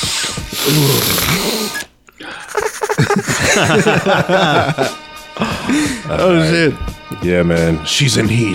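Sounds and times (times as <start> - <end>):
loud exaggerated sniffing through the nose in snorting bursts: 0.0 - 3.3
breathy vocal grunts: 0.6 - 1.8
speech: 0.6 - 1.9, 2.5 - 8.5
laughter: 2.2 - 6.4.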